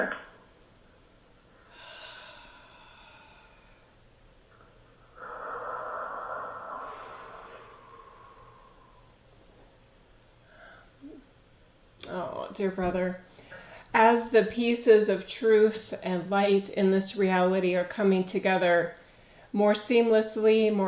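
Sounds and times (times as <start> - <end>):
speech: 0.0 - 0.2, 12.1 - 20.8
deep breathing: 1.5 - 9.7, 10.4 - 11.2.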